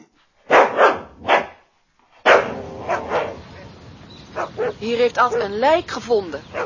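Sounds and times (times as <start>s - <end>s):
noisy rustling background: 0.0s - 6.6s
dog barks and yaps: 0.5s - 1.6s, 2.2s - 3.4s, 4.4s - 5.6s
speech: 4.8s - 6.6s.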